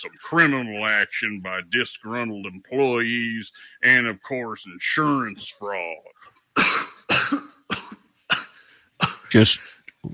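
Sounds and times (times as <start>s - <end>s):
speech: 0.0s - 6.7s, 9.3s - 10.1s
harsh raspy coughing fit: 6.5s - 9.7s.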